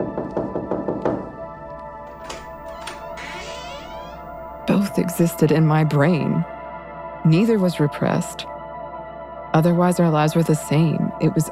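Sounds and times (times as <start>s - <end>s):
rapid firm knocking on a door: 0.0s - 1.3s
speech: 4.7s - 6.6s, 7.2s - 8.6s, 9.5s - 11.5s.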